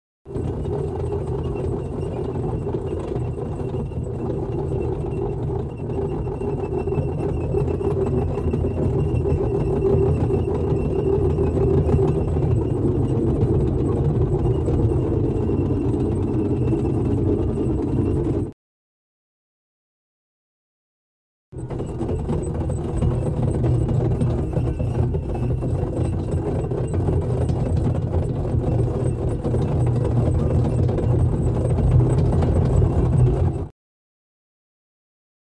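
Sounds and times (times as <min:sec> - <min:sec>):
tank tracks and treads: 0:00.3 - 0:18.5, 0:21.6 - 0:33.7.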